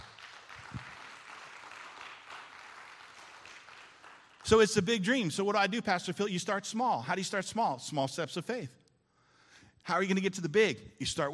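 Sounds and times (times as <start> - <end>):
crowd applauding: 0.0 - 4.9
speech: 4.5 - 8.8, 9.9 - 11.3.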